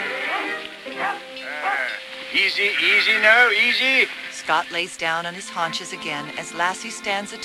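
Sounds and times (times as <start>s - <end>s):
flock of sheep bleating while herded by two dogs: 0.0s - 2.0s
speech: 2.3s - 7.4s.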